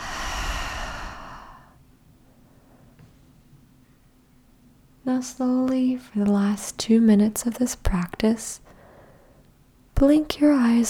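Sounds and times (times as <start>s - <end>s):
slow deep breathing in and out: 0.0s - 1.8s
speech: 5.1s - 8.6s, 10.0s - 10.8s.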